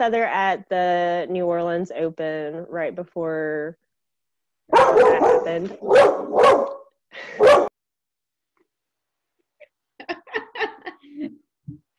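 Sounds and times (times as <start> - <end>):
speech: 0.0 - 3.9, 4.7 - 7.7
dog barking: 4.7 - 7.7
laughter: 10.0 - 11.4.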